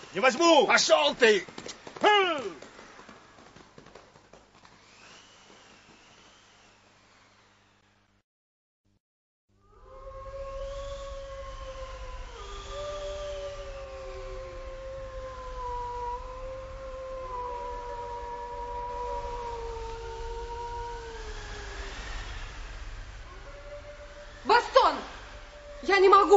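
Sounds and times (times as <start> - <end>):
speech: 0.1 - 2.6
wolves howling at night: 9.6 - 26.3
steady low rumble: 9.8 - 26.3.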